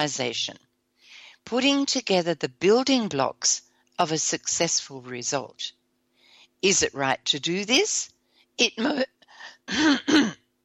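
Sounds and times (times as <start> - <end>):
speech: 0.0 - 0.7, 1.4 - 5.8, 6.6 - 10.4
person clearing a tickle in the throat: 9.7 - 10.5.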